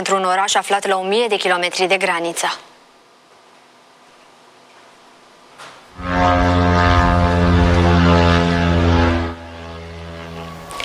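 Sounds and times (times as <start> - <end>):
speech: 0.0 - 2.7
attack drone propeller engine buzzing overhead: 6.0 - 10.8.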